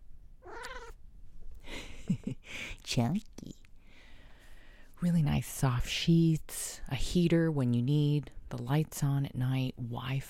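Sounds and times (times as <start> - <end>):
domestic cat meowing: 0.4 - 1.0
speech: 2.9 - 3.6, 5.0 - 10.2.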